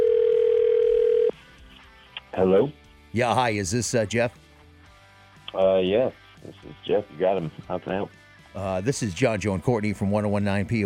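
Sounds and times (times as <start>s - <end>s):
telephone ringback tone: 0.0s - 1.3s
speech: 2.4s - 4.4s, 5.5s - 10.8s.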